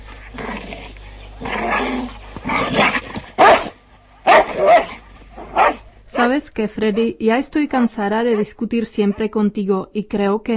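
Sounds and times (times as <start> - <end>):
dog barking and yipping: 2.8 - 5.8
speech: 6.2 - 10.5.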